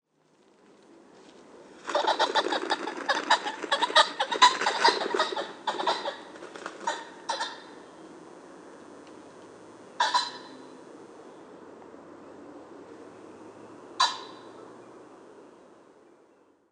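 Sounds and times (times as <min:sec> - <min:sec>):
Ring-necked Pheasant Phasianus colchicus calling: 0:01.9 - 0:08.0, 0:10.0 - 0:10.8, 0:14.0 - 0:14.7.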